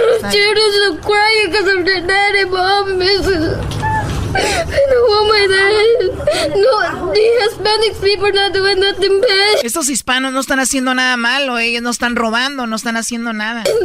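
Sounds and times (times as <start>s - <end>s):
girl whimpering and crying: 0.0s - 9.8s, 13.6s - 13.8s
speech: 0.2s - 13.8s.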